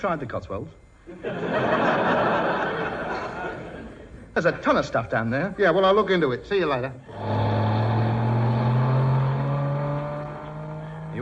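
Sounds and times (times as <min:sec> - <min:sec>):
speech: 0:00.0 - 0:02.6, 0:04.4 - 0:07.4
laughter: 0:01.1 - 0:04.6
police car engine humming along the road: 0:07.0 - 0:11.2.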